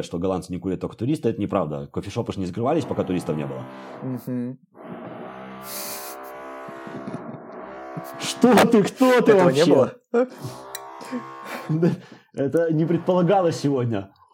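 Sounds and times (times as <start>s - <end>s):
speech: 0.0s - 4.8s, 5.6s - 6.0s, 8.0s - 14.2s
power drill motor whining: 2.8s - 4.1s, 4.8s - 8.6s, 10.4s - 11.8s
laughter: 6.9s - 9.7s, 10.5s - 13.3s.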